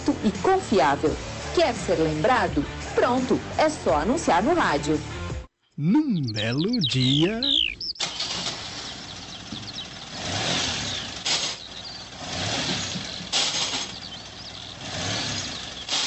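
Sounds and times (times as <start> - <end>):
speech: 0.1 - 5.1, 5.8 - 7.7
car engine revving while the driver cannot engage any gear: 7.9 - 16.0.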